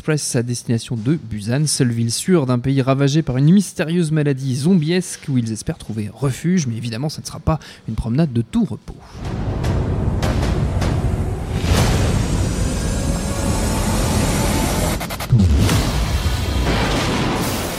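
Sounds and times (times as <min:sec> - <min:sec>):
speech: 0:00.0 - 0:09.5
sweeping whooshes: 0:09.1 - 0:17.7
dense cinematic explosions with deep rumbling booms: 0:09.2 - 0:17.7.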